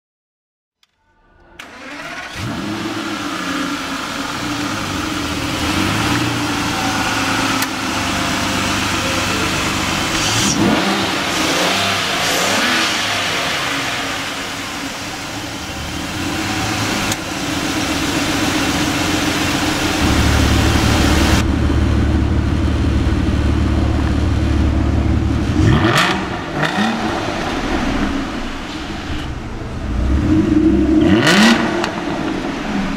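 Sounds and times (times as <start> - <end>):
Aston Martin DB9 Volante engine: 0.8 - 32.9.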